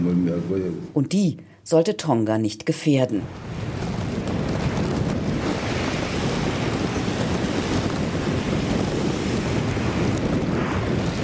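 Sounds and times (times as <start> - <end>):
speech: 0.0 - 3.6
gusty wind: 3.0 - 11.2
ocean surf surging through volcanic rock blowholes: 3.3 - 11.2.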